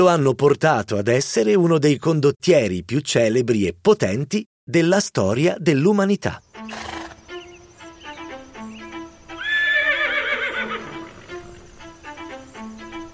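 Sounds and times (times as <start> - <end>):
speech: 0.0 - 7.0
horse whinnying: 6.7 - 7.2, 9.4 - 11.7.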